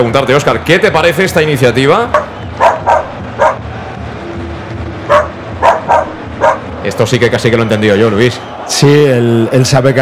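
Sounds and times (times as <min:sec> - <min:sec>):
speech: 0:00.0 - 0:02.3, 0:06.8 - 0:09.9
dogs barking in a stadium: 0:02.2 - 0:03.6, 0:05.1 - 0:06.6.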